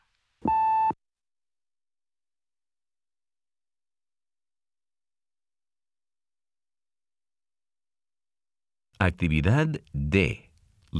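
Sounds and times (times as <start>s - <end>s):
speech: 0.4s - 0.7s, 9.0s - 10.9s
answering machine electronic beep: 0.5s - 1.0s.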